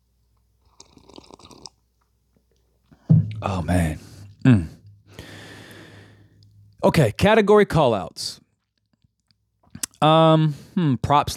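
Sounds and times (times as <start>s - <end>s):
soft slurping sip of coffee: 0.7s - 1.8s
speech: 3.4s - 4.8s, 6.8s - 8.4s, 10.0s - 11.3s.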